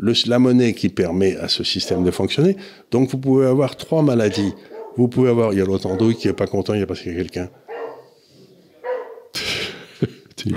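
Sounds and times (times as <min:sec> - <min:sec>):
speech: 0:00.0 - 0:07.6, 0:10.0 - 0:10.5
dog barking and yelping: 0:01.8 - 0:02.2, 0:04.1 - 0:05.1, 0:05.8 - 0:06.7, 0:07.7 - 0:08.2, 0:08.8 - 0:09.4
laughter: 0:09.3 - 0:10.5.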